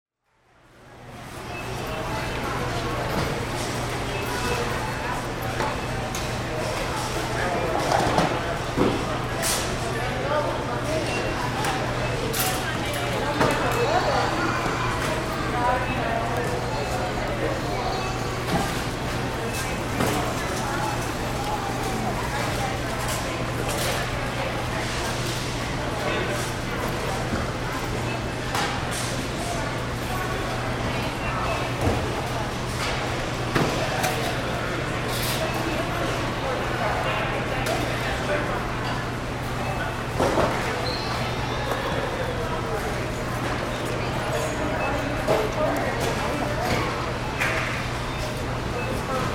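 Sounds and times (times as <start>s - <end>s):
store warehouse ambience: 0.3s - 49.3s.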